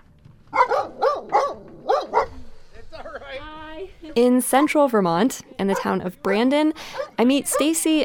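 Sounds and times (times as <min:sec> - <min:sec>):
female puppy barking at a home in Brandon, central Vermont: 0:00.5 - 0:02.4, 0:05.7 - 0:05.9, 0:07.0 - 0:07.8
speech: 0:04.2 - 0:08.0.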